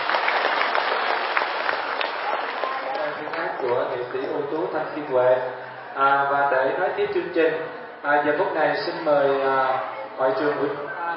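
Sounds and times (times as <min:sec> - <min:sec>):
audience applause after a song: 0:00.0 - 0:04.7
speech: 0:03.7 - 0:10.9.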